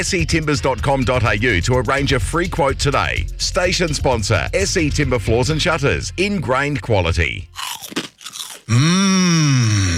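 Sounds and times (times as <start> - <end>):
speech: 0.0 - 8.0, 8.7 - 9.8
crunching on crispy pork crackling: 7.6 - 9.9
loud drawn-out satisfied groan from the eater: 8.7 - 9.9.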